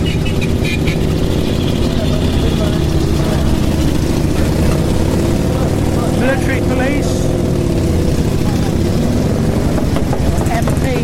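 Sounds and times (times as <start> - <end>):
higher mechanical whine of motorcycles: 0.0 - 10.9
motorcycles rumbling past: 0.0 - 11.0.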